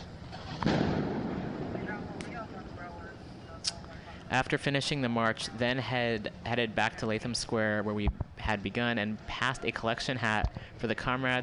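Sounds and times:
fireworks going off outdoors in front of a jail: 0.0s - 3.9s
voices: 1.5s - 11.4s
speech: 3.6s - 11.4s.

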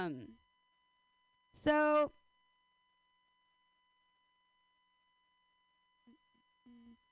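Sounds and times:
speech: 0.0s - 0.4s, 1.5s - 2.2s
faint electrical hum: 0.0s - 7.1s
woman humming low notes into a microphone: 6.7s - 7.0s.

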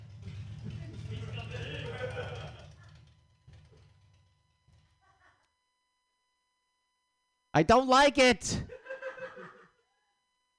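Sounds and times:
motorcycle engine passing outside: 0.0s - 5.0s
laughter: 0.8s - 3.1s, 5.0s - 5.5s, 8.5s - 9.8s
speech: 7.6s - 8.7s.

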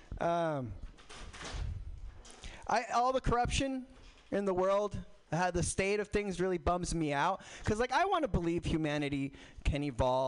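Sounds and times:
speech: 0.2s - 0.9s, 2.7s - 10.2s
door creaking with a squeaky whine: 0.8s - 2.4s
low thud of a door closing: 1.0s - 1.9s.

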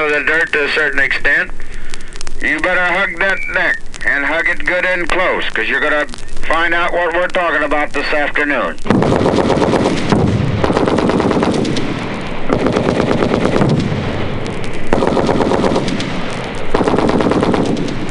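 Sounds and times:
speech: 0.1s - 1.7s, 2.4s - 10.2s
machine gun fire over an infiltration training course: 8.9s - 18.0s.

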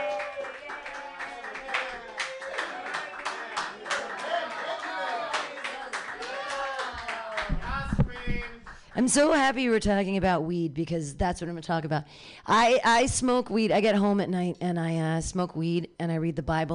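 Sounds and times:
audience clapping: 0.0s - 9.5s
speech: 9.0s - 16.7s.

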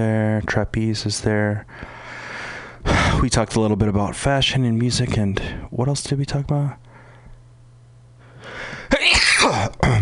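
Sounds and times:
speech: 0.0s - 2.0s, 3.2s - 6.8s, 9.5s - 10.0s
intake of breath: 1.7s - 3.0s, 8.2s - 8.9s
person sneezing: 8.9s - 10.0s.

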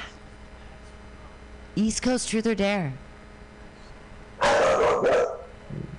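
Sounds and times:
speech: 1.8s - 3.0s
dogs barking loudly: 4.4s - 5.6s.

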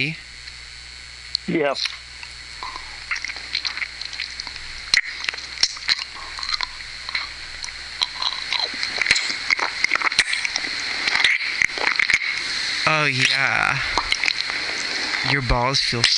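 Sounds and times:
speech: 0.0s - 0.2s, 1.5s - 2.0s, 12.9s - 14.0s, 15.2s - 16.1s
wet sucking and smacking noises: 1.8s - 15.4s
slurps: 2.6s - 15.4s.

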